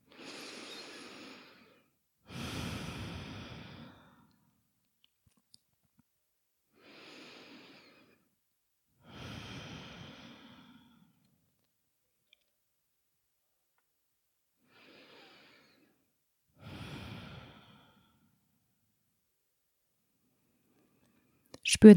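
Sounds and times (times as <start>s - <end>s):
slow deep breathing exhaling through the open mouth: 0.0s - 4.6s, 6.8s - 8.3s, 9.0s - 11.4s, 14.6s - 16.0s, 16.6s - 18.6s
speech: 21.7s - 21.9s.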